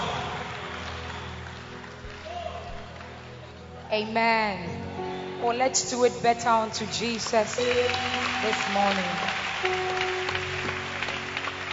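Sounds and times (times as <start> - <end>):
audience clapping: 0.0 - 3.8, 6.8 - 11.7
speech: 3.9 - 4.8, 5.4 - 9.9.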